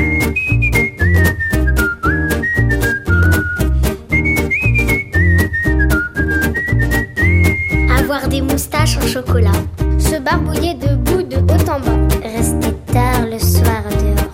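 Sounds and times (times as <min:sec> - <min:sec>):
person whistling a tune: 0:00.0 - 0:08.1
bouncy musical backing with a punchy beat: 0:00.0 - 0:14.2.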